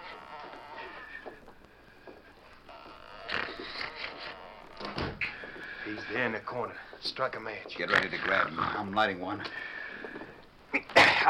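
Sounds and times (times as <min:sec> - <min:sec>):
cabin door opening and closing: 0:04.8 - 0:05.3
speech: 0:06.0 - 0:09.7.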